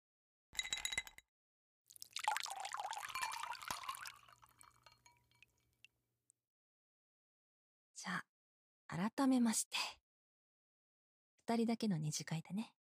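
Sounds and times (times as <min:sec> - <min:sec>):
glass clink: 0:00.6 - 0:01.2, 0:02.2 - 0:05.6
ice clattering in a glass: 0:00.6 - 0:01.2, 0:02.0 - 0:05.5
liquor drips: 0:01.9 - 0:05.6
strong liquor poured over ice in a glass: 0:01.9 - 0:05.6
speech: 0:08.0 - 0:08.3, 0:08.9 - 0:10.0, 0:11.5 - 0:12.8.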